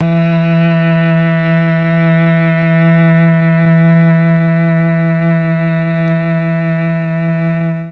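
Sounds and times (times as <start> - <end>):
mellotron cello note E3: 0.0 - 7.9.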